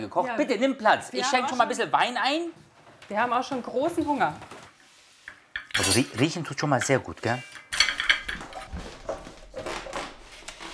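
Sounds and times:
speech: 0.0 - 4.5, 5.8 - 7.6
plates and cutlery clinking as a home-cooked meal is served at a dinner table: 5.2 - 9.8.

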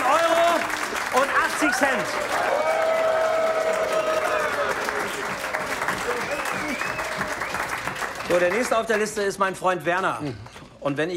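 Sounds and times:
crowd applauding: 0.0 - 9.4
speech: 1.7 - 2.8, 8.3 - 11.1
whistles in a crowd: 5.9 - 8.0.

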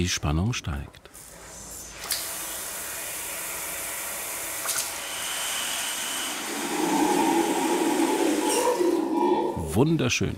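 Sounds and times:
speech: 0.0 - 1.0, 9.8 - 10.3
water hose spraying: 1.8 - 9.4
low harsh tone: 6.4 - 10.0.

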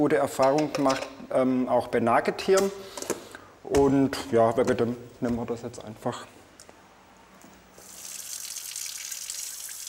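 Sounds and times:
speech: 0.0 - 3.0, 3.7 - 6.4
water pouring from a tap for puppy milk formula: 7.8 - 9.8.

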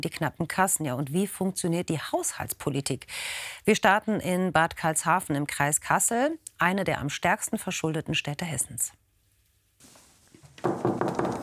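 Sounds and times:
speech: 0.0 - 9.0
knocking on the wooden door of a mayor's office: 10.6 - 11.4.

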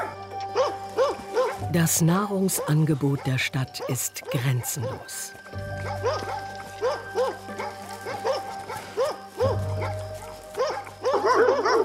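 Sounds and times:
several agitated dogs barking excitedly: 0.0 - 11.8
speech: 1.7 - 6.4.

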